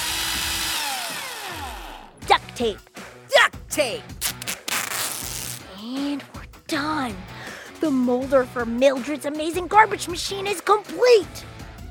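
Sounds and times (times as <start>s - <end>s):
power drill whirring: 0.0s - 2.1s
speech: 2.6s - 4.2s, 5.9s - 11.5s.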